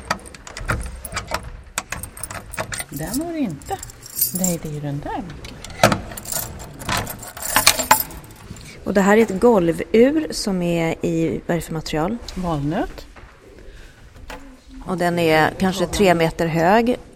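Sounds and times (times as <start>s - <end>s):
bunch of keys jangling on a keyring: 0.0s - 4.8s, 5.7s - 8.8s
speech: 2.9s - 5.5s, 8.9s - 13.0s, 14.9s - 17.1s.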